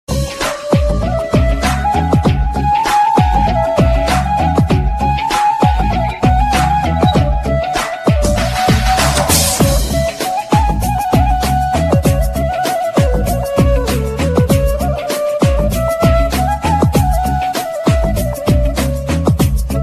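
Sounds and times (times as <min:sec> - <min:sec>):
bansuri flute in a Bollywood ringtone: 0:00.1 - 0:19.8
bass ringtone: 0:06.7 - 0:07.6.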